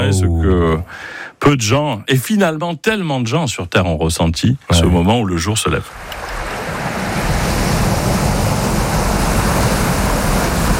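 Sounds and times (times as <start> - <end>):
speech: 0.0 - 6.2
sea waves on a beach: 5.9 - 10.7.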